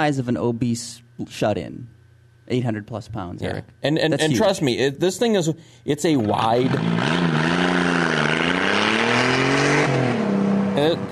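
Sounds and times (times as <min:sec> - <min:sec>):
speech: 0:00.0 - 0:07.6
liquid-cooled car engine revving: 0:06.2 - 0:11.1.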